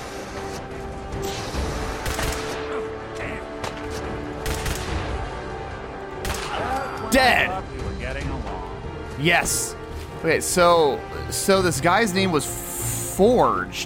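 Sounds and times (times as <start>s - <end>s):
steady noisy video game background: 0.0s - 13.8s
gunfire from an incendiary weapon in a video game: 1.2s - 2.9s, 3.6s - 5.5s, 6.1s - 6.7s
speech: 7.1s - 7.7s, 9.2s - 12.6s, 13.2s - 13.8s.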